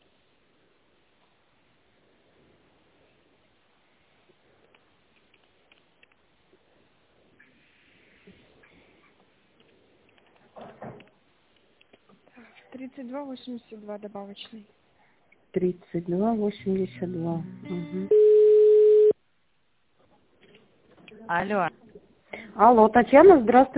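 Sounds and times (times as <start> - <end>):
speech: 12.8 - 14.8, 15.6 - 18.3, 21.3 - 21.8, 22.6 - 23.7
flat telephone tone as an office call is connected: 17.7 - 19.2.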